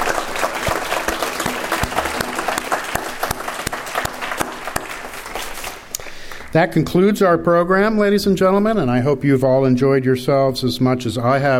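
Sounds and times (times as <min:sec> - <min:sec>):
audience applause at an evening event thanking student and staff volunteers: 0:00.0 - 0:06.6
speech: 0:06.5 - 0:11.5.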